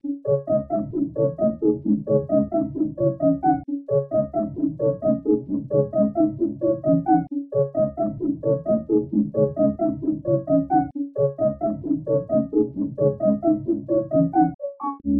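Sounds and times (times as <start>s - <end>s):
trap arpeggio melody loop in C sharp minor: 0.0s - 15.0s.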